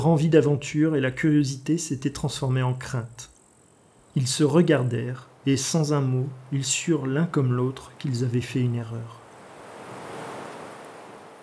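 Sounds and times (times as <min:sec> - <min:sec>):
speech: 0:00.0 - 0:03.3, 0:04.2 - 0:09.2
strong wind roaring over a wheat field: 0:09.2 - 0:11.4.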